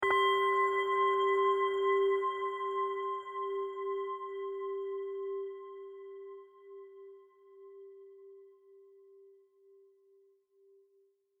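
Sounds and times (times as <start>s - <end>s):
temple courtyard bell single low tone: 0.0s - 7.2s.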